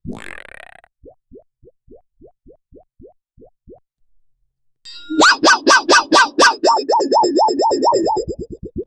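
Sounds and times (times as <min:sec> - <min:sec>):
funny sound effect: 0:04.9 - 0:08.5.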